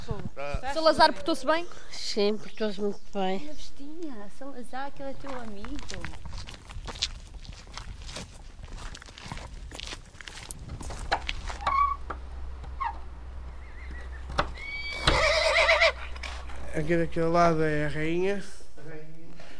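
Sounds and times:
speech: 0.4 - 6.6, 16.8 - 18.6
hooves clip-clopping: 4.9 - 17.4
low steady hum: 10.6 - 19.3
horse neighing: 12.8 - 16.7.

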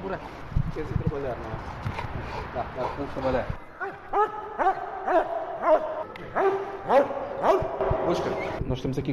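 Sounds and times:
speech: 0.1 - 5.2, 8.1 - 9.1
dog barking during detection training: 3.8 - 7.9.

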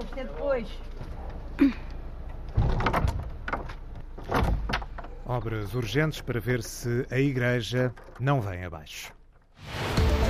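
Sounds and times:
speech: 0.2 - 1.0, 1.6 - 1.8, 5.3 - 9.8
heavy church door creaking and thudding shut: 2.5 - 5.0.

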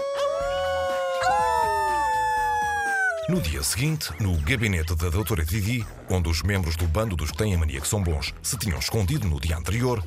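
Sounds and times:
people celebrating imitating wolf howls: 0.0 - 3.6
speech: 3.3 - 10.0.

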